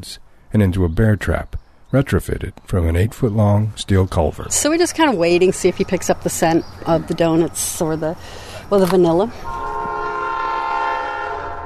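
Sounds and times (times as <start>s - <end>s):
speech: 0.0s - 9.7s
passing train horn: 9.4s - 11.6s.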